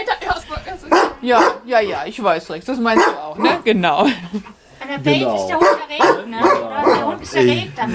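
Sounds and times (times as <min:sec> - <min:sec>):
dog barking and yowling: 0:00.9 - 0:01.7, 0:02.9 - 0:03.6, 0:05.6 - 0:07.2
speech: 0:01.2 - 0:07.9.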